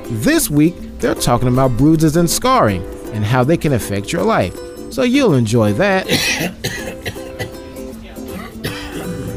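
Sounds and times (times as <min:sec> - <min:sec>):
speech: 0:00.1 - 0:06.8
person coughing: 0:06.1 - 0:07.6, 0:08.3 - 0:09.3.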